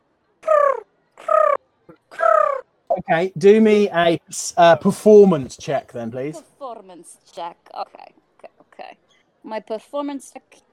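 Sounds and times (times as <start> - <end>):
person imitating pigeon coos to lure a pigeon: 0.4 - 3.2
speech: 3.1 - 8.2, 9.4 - 10.6.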